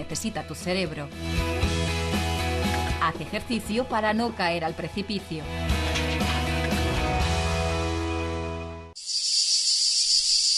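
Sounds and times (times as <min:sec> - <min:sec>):
speech: 0:00.0 - 0:02.0, 0:03.0 - 0:06.4
music: 0:00.0 - 0:09.0
loud steady high-pitched cicada drone: 0:09.0 - 0:10.5.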